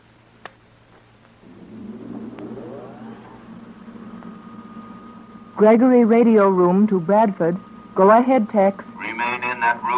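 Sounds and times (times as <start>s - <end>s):
car engine revving: 1.4s - 6.7s
speech: 5.6s - 8.9s.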